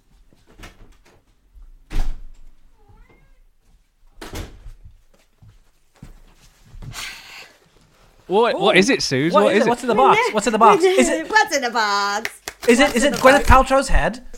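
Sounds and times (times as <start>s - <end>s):
door opening and closing with knocks and thuds: 1.8s - 3.3s, 4.2s - 4.8s
cat meowing: 2.7s - 3.5s
speech: 8.3s - 14.3s
laughter: 8.9s - 11.5s.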